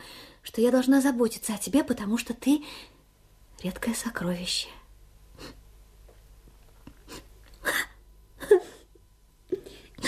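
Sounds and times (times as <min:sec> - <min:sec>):
speech: 0:00.6 - 0:03.0, 0:03.6 - 0:04.8
woman crying quietly with sobs and sniffles: 0:07.6 - 0:09.0.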